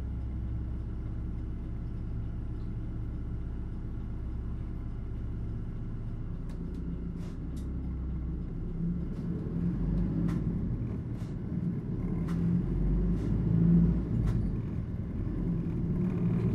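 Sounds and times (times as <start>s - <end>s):
low engine rumble inside a moving bus: 0.0s - 16.5s.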